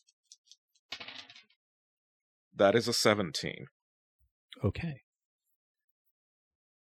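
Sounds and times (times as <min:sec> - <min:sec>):
two six-sided dice tumbling across a hard surface in a tabletop role-playing game: 0:00.2 - 0:01.6
speech: 0:02.6 - 0:03.8, 0:04.6 - 0:05.0.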